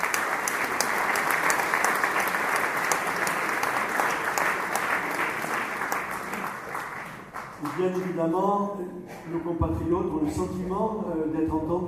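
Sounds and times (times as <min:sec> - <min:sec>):
applause from a large audience: 0:00.0 - 0:08.2
speech: 0:07.8 - 0:11.8.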